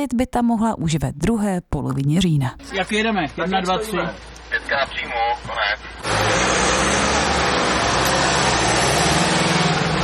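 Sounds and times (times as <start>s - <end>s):
speech: 0.0s - 6.7s
engines of decommissioned ambulances pulling out of an emergency medical service compound: 2.6s - 10.0s.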